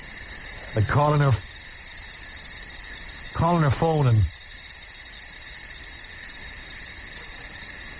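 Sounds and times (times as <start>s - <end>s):
crickets chirping: 0.0s - 7.9s
speech: 0.7s - 1.5s, 3.4s - 4.4s.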